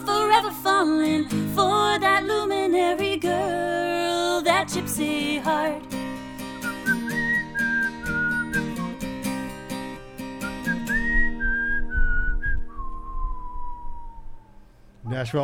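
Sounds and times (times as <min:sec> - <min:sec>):
steady musical backing with rhythmic strummed or percussive accents: 0:00.0 - 0:12.0
speech: 0:00.4 - 0:03.0, 0:15.1 - 0:15.4
person whistling a melody: 0:06.6 - 0:09.4, 0:10.4 - 0:14.5.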